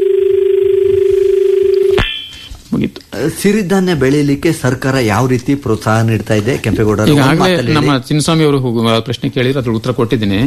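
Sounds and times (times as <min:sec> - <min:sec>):
pulsing telephone line tone of a call connecting on a radio phone-in: 0:00.0 - 0:02.5
speech: 0:02.8 - 0:10.4.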